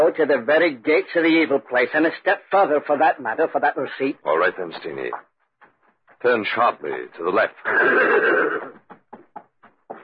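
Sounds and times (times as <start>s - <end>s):
speech: 0.0s - 5.3s, 6.2s - 8.8s
horse neighing and snorting: 7.6s - 8.9s.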